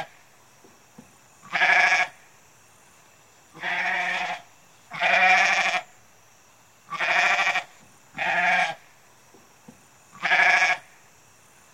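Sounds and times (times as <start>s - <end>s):
goat bleating: 1.4s - 2.1s, 3.6s - 5.8s, 6.9s - 8.8s, 10.2s - 10.8s.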